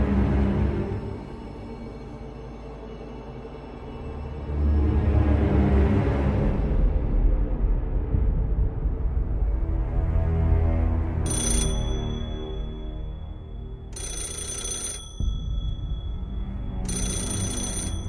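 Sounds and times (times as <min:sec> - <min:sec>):
steady low droning musical background: 0:00.0 - 0:18.0
old-style black telephone bell ringing: 0:11.3 - 0:18.0.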